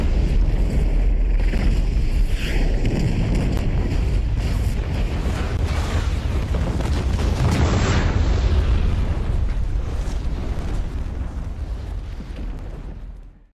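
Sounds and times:
deep rumble of explosion: 0.0 - 13.5
massive staged special-effects kerosene explosion with dust and debris: 0.0 - 13.5.

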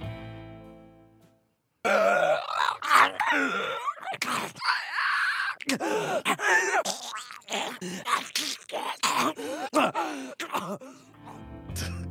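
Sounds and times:
voice imitating a fungus-infected creature groaning and growling: 1.9 - 10.2, 11.2 - 12.0.

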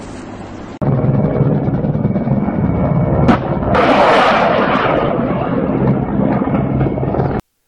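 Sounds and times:
loud roaring blast: 0.8 - 7.4
mortar fire bursting near a highway: 0.8 - 7.4
sharp crack: 3.2 - 6.7.

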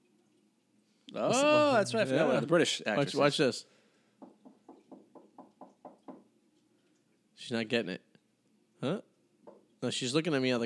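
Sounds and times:
speech: 1.1 - 3.8, 7.5 - 8.1, 8.8 - 9.1, 9.8 - 10.6
knocking on a hard surface like a door: 4.2 - 6.3.

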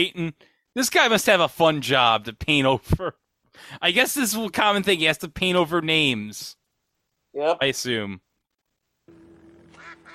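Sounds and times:
speech: 0.0 - 6.6, 7.4 - 8.3
duck quacking: 9.7 - 10.1.

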